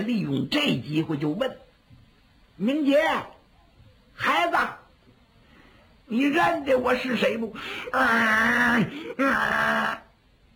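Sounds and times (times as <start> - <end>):
speech: 0.0 - 1.6, 2.6 - 3.4, 4.2 - 4.8, 6.1 - 10.0
man's voice imitating a bellowing ox roar: 7.9 - 10.1.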